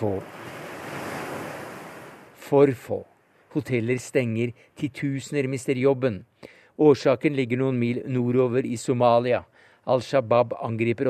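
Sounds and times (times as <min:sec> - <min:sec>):
speech: 0:00.0 - 0:00.5, 0:02.5 - 0:11.0
gentle ocean swells washing onto a chalk-white beach: 0:00.0 - 0:02.4
faint breath of wind: 0:00.0 - 0:04.8.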